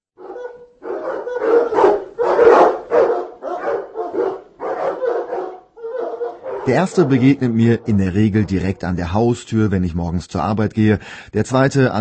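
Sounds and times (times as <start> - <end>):
dog barking in a neighbourhood: 0.2 - 8.8
speech: 6.7 - 11.9.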